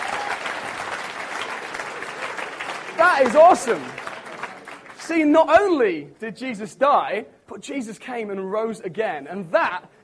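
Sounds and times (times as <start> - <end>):
audience applause at a church gathering: 0.0 - 5.1
speech: 3.0 - 4.0, 5.1 - 10.0.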